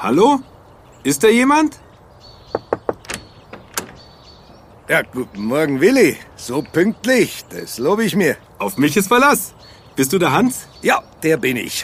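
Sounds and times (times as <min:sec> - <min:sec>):
speech: 0:00.0 - 0:01.8, 0:04.9 - 0:11.8
knocking on a back door: 0:02.5 - 0:04.0
thumps and clatters: 0:02.5 - 0:04.0.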